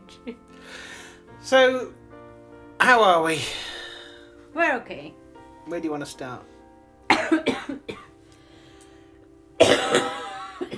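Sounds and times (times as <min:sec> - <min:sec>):
speech: 0:00.2 - 0:02.0, 0:02.9 - 0:03.7, 0:04.6 - 0:06.5
harsh rasping coughing fit: 0:07.1 - 0:08.1, 0:09.6 - 0:10.7.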